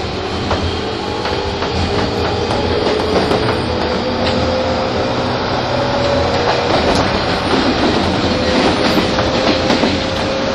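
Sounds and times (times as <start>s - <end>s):
rail clicks: 0.0s - 10.5s
rumble inside a moving commuter train: 0.0s - 10.5s.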